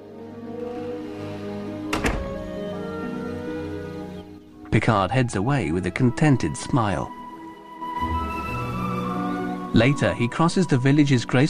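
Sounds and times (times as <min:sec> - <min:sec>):
sustained musical tones: 0:00.0 - 0:11.4
door softly closing: 0:01.8 - 0:03.8
speech: 0:04.8 - 0:07.2, 0:09.8 - 0:11.4.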